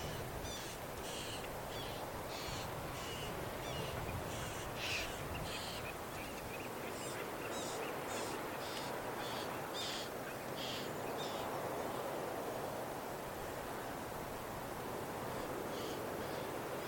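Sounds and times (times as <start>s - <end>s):
young red-billed chough giving harsh rasping begging calls: 0.0s - 5.8s
steady background hiss: 0.0s - 16.8s.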